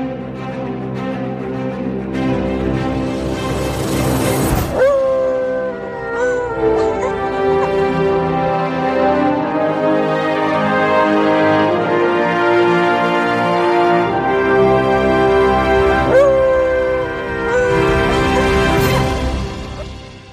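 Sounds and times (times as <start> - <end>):
lively instrumental podcast theme tune with bright layered melody: 0.0 - 20.3.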